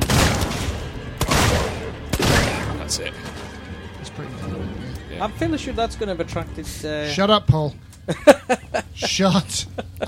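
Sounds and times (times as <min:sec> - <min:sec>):
revolver gunshots in a video game: 0:00.0 - 0:02.9
speech: 0:02.9 - 0:03.4, 0:04.1 - 0:10.0
laughter: 0:08.0 - 0:10.0.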